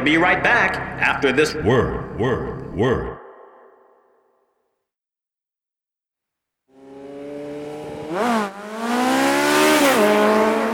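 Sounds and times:
speech: 0.0s - 3.2s
sport motorcycle engine revving while speeding down the block: 6.7s - 10.7s.

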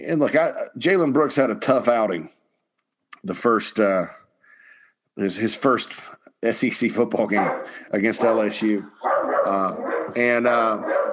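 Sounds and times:
speech: 0.0s - 2.4s, 3.2s - 4.2s, 5.2s - 11.1s
dog barking and yelping excitedly at passerby: 7.3s - 11.1s.

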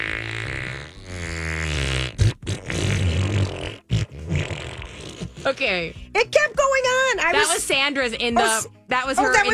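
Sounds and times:
person blowing a raspberry like a long loud fart: 0.0s - 6.2s
speech: 5.4s - 9.5s.

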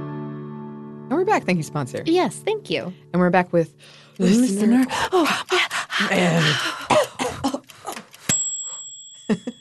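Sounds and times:
speech: 1.2s - 7.5s
person coughing after eating spicy food: 6.9s - 7.7s
throat clearing: 6.9s - 7.7s
bell-like ring: 8.3s - 9.5s.

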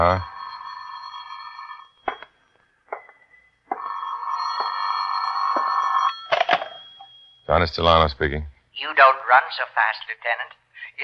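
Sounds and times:
speech: 0.0s - 0.3s, 7.5s - 11.0s
telephone ringing in an office: 0.0s - 7.5s.

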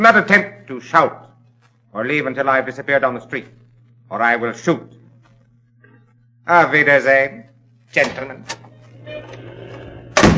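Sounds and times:
speech: 0.0s - 1.3s, 1.9s - 5.0s, 6.4s - 8.6s
low steady hum: 0.0s - 10.3s
door slamming shut: 10.1s - 10.3s.

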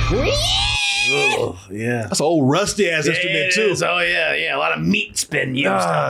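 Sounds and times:
woman's loud high-pitched scream and wavering shrieks: 0.1s - 1.5s
speech: 0.1s - 6.0s.

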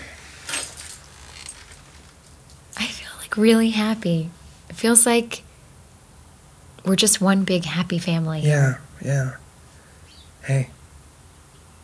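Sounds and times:
keys jangling as they are picked up: 0.2s - 3.0s
speech: 3.4s - 5.5s, 6.8s - 9.4s, 10.4s - 10.8s.

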